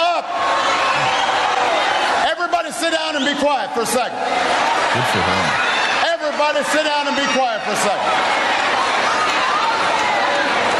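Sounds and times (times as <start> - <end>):
large crowd yelling at a rally: 0.0 - 10.7
speech: 3.4 - 5.7, 6.4 - 8.6.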